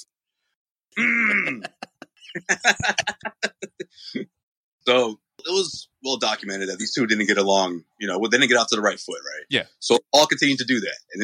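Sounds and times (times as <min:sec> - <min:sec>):
raspy throat clearing: 0:00.9 - 0:01.8
speech: 0:01.0 - 0:11.2
laughter: 0:01.2 - 0:04.1.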